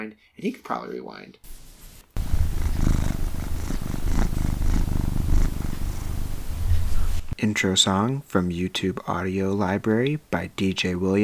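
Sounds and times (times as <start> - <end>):
speech: 0.0 - 1.6, 7.4 - 11.2
cat purring: 2.2 - 7.4.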